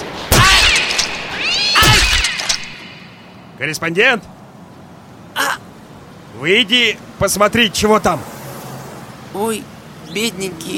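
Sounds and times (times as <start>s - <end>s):
cats returning home meowing loudly: 0.4s - 2.4s
speech: 3.6s - 4.4s, 6.4s - 8.4s, 9.3s - 10.7s.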